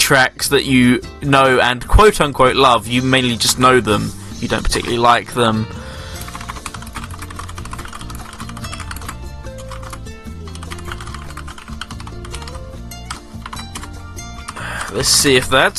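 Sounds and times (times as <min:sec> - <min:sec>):
soft music playing underneath: 0:00.0 - 0:15.7
speech: 0:00.1 - 0:05.8, 0:15.0 - 0:15.7
typing on a computer keyboard: 0:06.2 - 0:13.9.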